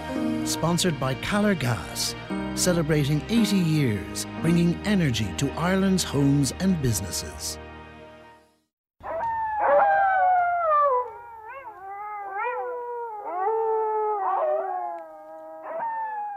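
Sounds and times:
speech: 0.5 - 7.6
wolf pack howling in the wild: 9.0 - 16.3.

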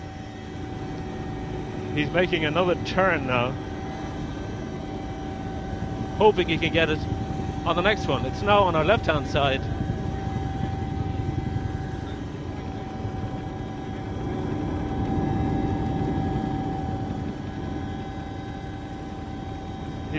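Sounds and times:
helicopter engine whining while landing on an island: 0.0 - 20.1
speech: 2.0 - 3.7, 6.2 - 9.8.

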